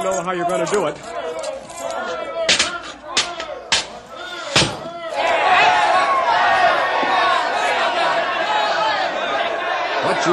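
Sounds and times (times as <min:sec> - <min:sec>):
speech: 0:00.0 - 0:01.2
large crowd shouting and yelling: 0:00.0 - 0:10.3
sharp bangs: 0:02.4 - 0:05.0.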